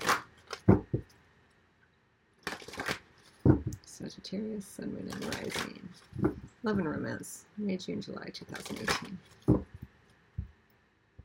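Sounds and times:
tarot cards being shuffled and drawn from a deck: 0.0 - 1.1, 2.4 - 3.8, 5.1 - 6.5, 8.5 - 9.9
speech: 4.0 - 9.4.

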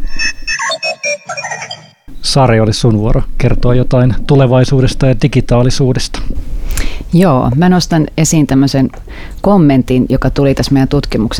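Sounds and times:
mobile phone ringtone: 0.0 - 2.1
speech: 1.2 - 11.3.

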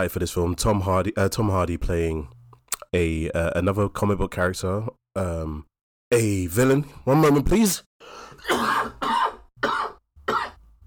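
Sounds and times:
speech: 0.0 - 8.7
harsh coughs: 8.3 - 10.6.

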